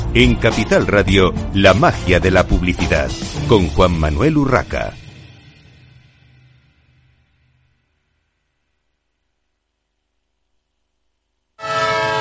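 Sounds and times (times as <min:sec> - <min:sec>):
speech: 0:00.1 - 0:05.0
departing train horn blaring: 0:11.6 - 0:12.1.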